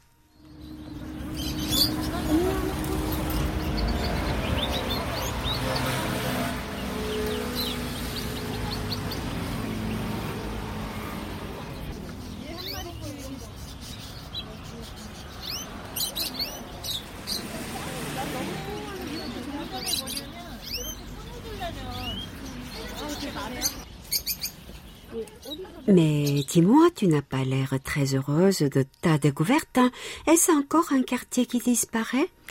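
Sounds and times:
birds chirping and twittering: 0.0s - 30.2s
steady low rumble of engines: 0.3s - 25.4s
speech: 26.0s - 32.4s.

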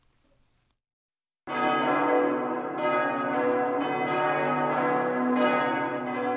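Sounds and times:
church bell ringing: 1.5s - 6.3s.

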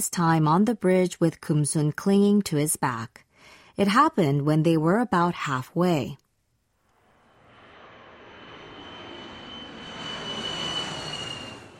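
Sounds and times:
speech: 0.0s - 3.2s, 3.8s - 6.2s
airplane flying overhead with engine roar and whining tone: 7.0s - 11.7s.

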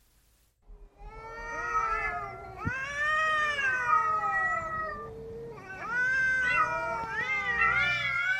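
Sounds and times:
stray cats yowling and fighting in a vacant lot during mating season: 1.0s - 8.3s.

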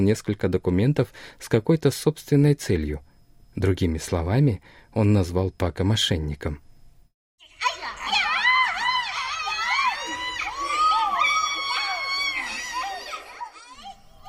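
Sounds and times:
speech: 0.0s - 6.7s
children shouting and shrieking excitedly: 7.4s - 14.2s.

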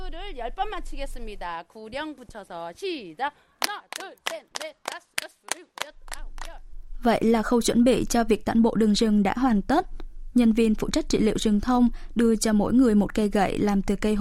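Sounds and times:
speech: 0.3s - 14.2s
group clapping hands in unison to warm up in cold weather: 3.6s - 6.6s.

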